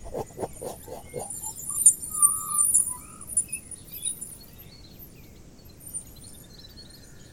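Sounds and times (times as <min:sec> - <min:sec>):
wood pigeons cooing: 0:00.0 - 0:01.5
smaller birds chirping and twittering: 0:00.0 - 0:07.2.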